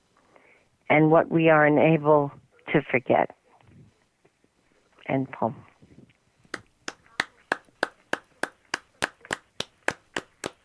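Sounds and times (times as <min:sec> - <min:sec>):
speech: 0:00.9 - 0:03.4, 0:05.1 - 0:05.7
single person clapping after a poem reading: 0:06.5 - 0:10.6.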